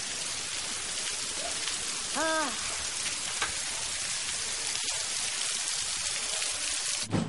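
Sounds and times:
steady pouring rain: 0.0s - 7.2s
person exclaiming: 2.1s - 2.7s
speech: 2.2s - 2.7s.

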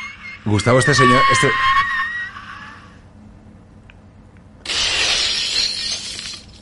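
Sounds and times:
speech: 0.5s - 1.9s
glass windows shattering: 4.7s - 6.5s.

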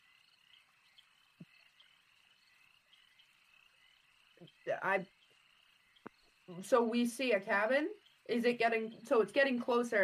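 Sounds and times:
frog croaks in a swamp: 0.0s - 7.0s
constant high insect-like drone in a swamp: 0.0s - 10.0s
speech: 4.4s - 5.2s, 6.5s - 10.0s.

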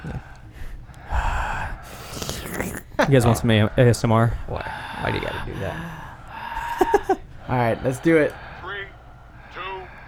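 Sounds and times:
heavy breathing: 0.0s - 10.0s
laughter: 2.9s - 8.8s
speech: 3.1s - 6.0s, 6.8s - 8.4s.

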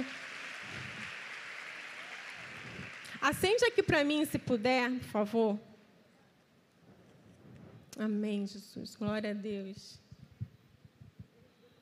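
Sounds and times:
crowd clapping: 0.0s - 3.9s
speech: 3.2s - 5.7s, 8.0s - 10.0s.

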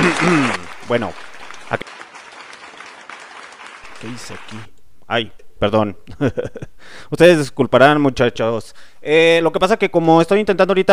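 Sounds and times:
laughter: 0.0s - 1.0s, 6.1s - 6.8s
crowd applauding: 0.0s - 4.7s
sharp loud clap: 0.0s - 4.7s
speech: 0.2s - 1.9s, 4.0s - 10.9s.

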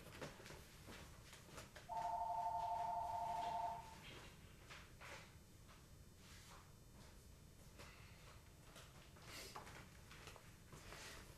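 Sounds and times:
low hiss: 0.6s - 9.2s
telephone ringing with a steady electronic tone: 1.9s - 4.0s.

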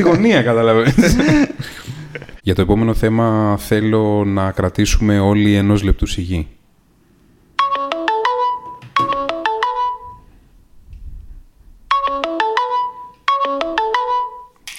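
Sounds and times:
laughter: 0.0s - 2.4s
speech: 0.0s - 6.6s
Google Hangouts notification ringtone: 7.6s - 10.3s, 11.9s - 14.6s.

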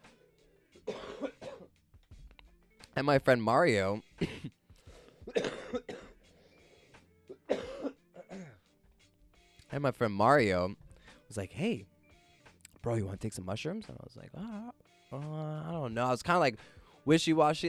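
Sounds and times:
person coughing harshly: 0.8s - 1.7s, 4.2s - 6.2s, 7.3s - 8.6s
raspy throat clearing: 0.8s - 1.7s, 5.1s - 6.2s, 7.4s - 8.6s
speech: 3.0s - 4.3s, 9.8s - 11.9s, 12.8s - 17.6s.

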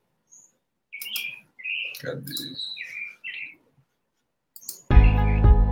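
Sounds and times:
bird singing: 0.3s - 3.6s, 4.6s - 5.6s
speech: 2.0s - 2.9s.

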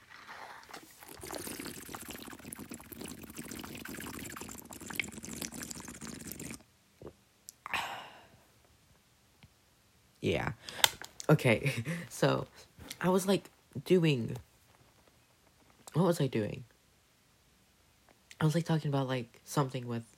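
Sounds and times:
water pouring into a glass: 0.0s - 6.6s
speech: 10.3s - 14.5s, 16.0s - 16.7s, 18.4s - 20.1s.

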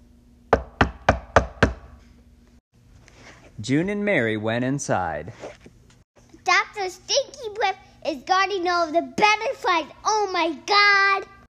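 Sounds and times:
firm knocking on a door: 0.5s - 1.9s
speech: 3.6s - 5.6s, 6.9s - 11.3s.

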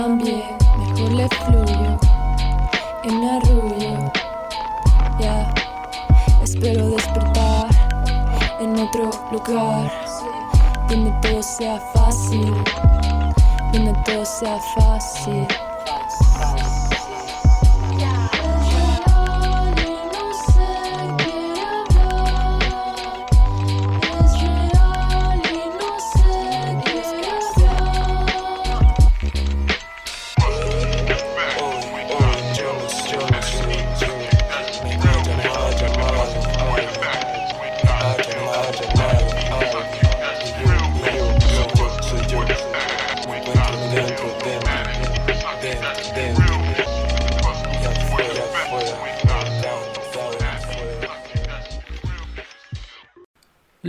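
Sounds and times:
speech: 0.0s - 2.2s, 3.0s - 4.2s, 6.5s - 7.3s, 8.6s - 10.0s, 10.9s - 15.6s
Mexican hip hop song: 0.0s - 53.0s
rapped vocals: 0.0s - 53.0s
heavy thumping bass beat: 0.6s - 2.7s, 4.9s - 8.6s, 10.6s - 11.4s, 12.0s - 14.1s, 16.2s - 19.9s, 20.5s - 20.9s, 21.9s - 25.4s, 27.6s - 29.8s, 30.4s - 31.2s, 33.3s - 36.9s, 37.8s - 38.2s, 38.9s - 42.6s, 43.5s - 44.0s, 44.6s - 48.2s, 49.2s - 49.6s.

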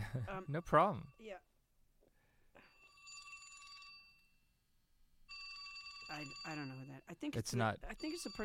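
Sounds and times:
speech: 0.1s - 1.4s, 6.1s - 8.4s
flip phone ringing with a bright electronic ringtone: 2.6s - 4.5s, 5.3s - 7.0s, 8.0s - 8.4s.

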